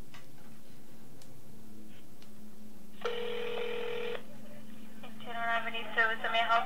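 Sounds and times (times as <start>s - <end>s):
low hum: 0.0s - 6.6s
phone line ringing on an outgoing call: 3.0s - 4.2s.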